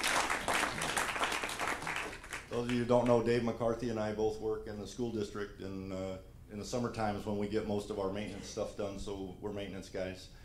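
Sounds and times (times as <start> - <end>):
crowd at a church service applauding: 0.0 - 2.8
speech: 2.5 - 10.4.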